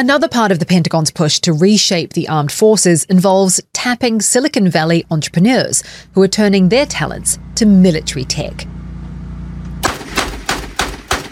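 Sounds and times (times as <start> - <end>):
speech: 0.0 - 8.8
low mechanical hum: 3.8 - 11.3
AI-powered machine gun firing at drones: 9.8 - 11.3.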